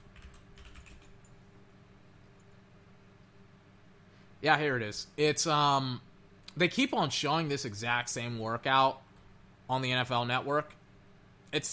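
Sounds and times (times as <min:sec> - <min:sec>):
computer keyboard typing: 0:00.0 - 0:01.4
speech: 0:04.4 - 0:09.0, 0:09.7 - 0:10.8, 0:11.5 - 0:11.7.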